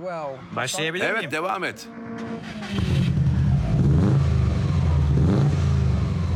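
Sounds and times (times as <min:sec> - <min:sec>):
speech: 0:00.0 - 0:03.1
powerful car engine upgraded to 325 horsepower revving: 0:01.6 - 0:06.3.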